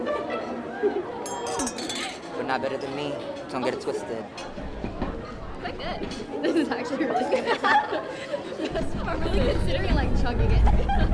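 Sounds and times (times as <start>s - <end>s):
several people chattering in a lively room: 0.0s - 11.1s
glasses clinking in a toast: 1.2s - 2.5s
speech: 2.5s - 4.7s, 6.0s - 11.1s
laughter: 6.4s - 9.7s, 10.4s - 11.1s.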